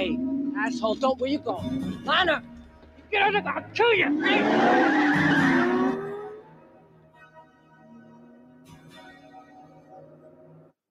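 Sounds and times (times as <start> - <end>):
tires screeching in a long skid during a car chase: 0.0 - 6.8
car engine roaring during a car chase: 0.0 - 7.0
speech: 0.6 - 2.5, 3.1 - 5.4.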